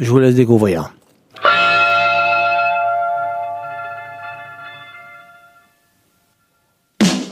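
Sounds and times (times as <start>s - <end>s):
speech: 0.0s - 1.0s
overdriven electric guitar chord in a blues-rock song intro: 1.4s - 5.9s.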